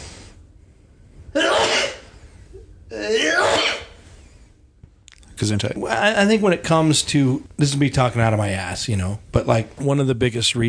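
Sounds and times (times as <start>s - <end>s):
quiet hiss: 0.0s - 10.6s
person sneezing: 1.4s - 2.1s, 2.9s - 4.0s
speech: 2.9s - 3.5s, 5.4s - 10.6s.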